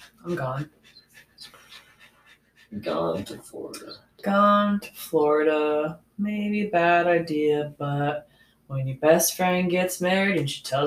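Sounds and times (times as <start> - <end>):
dog panting in breathy puffs: 0.0 - 4.0
speech: 0.2 - 1.6, 2.7 - 10.8.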